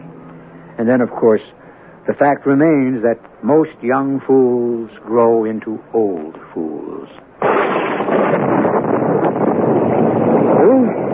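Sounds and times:
speech: 0:00.8 - 0:07.2
wind roaring through a thunderstorm: 0:06.2 - 0:11.1
low thunder rumble: 0:07.4 - 0:11.1.

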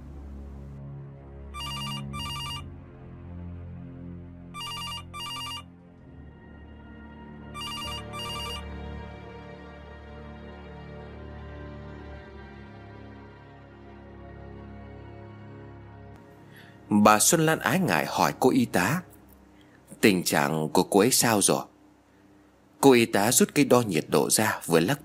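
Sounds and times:
low sustained musical drone: 0:00.0 - 0:22.7
telephone bell ringing in double bursts: 0:01.6 - 0:02.7, 0:04.6 - 0:05.7, 0:07.6 - 0:08.6
speech: 0:16.9 - 0:19.1, 0:20.0 - 0:21.7, 0:22.8 - 0:25.0.

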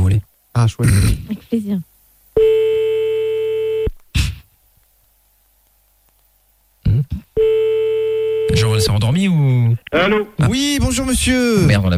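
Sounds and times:
speech: 0:00.6 - 0:01.9, 0:08.9 - 0:11.9
loud steady telephone line tone during a redial: 0:02.4 - 0:03.9, 0:07.4 - 0:08.9.

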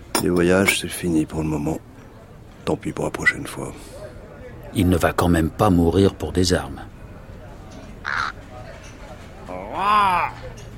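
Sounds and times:
steady low noise: 0:00.0 - 0:10.7
speech: 0:00.2 - 0:01.9, 0:02.6 - 0:04.0, 0:04.7 - 0:06.9
crow cawing in a city: 0:08.0 - 0:08.4.

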